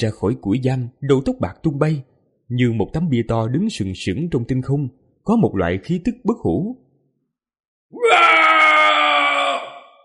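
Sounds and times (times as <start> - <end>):
speech: 0.0 - 6.8
white-haired old man screaming with face lifted to the sky: 8.0 - 10.0.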